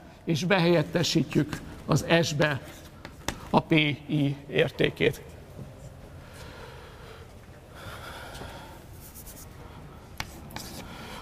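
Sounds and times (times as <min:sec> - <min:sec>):
speech: 0:00.3 - 0:02.8, 0:03.5 - 0:05.3
writing on a board: 0:09.0 - 0:11.0.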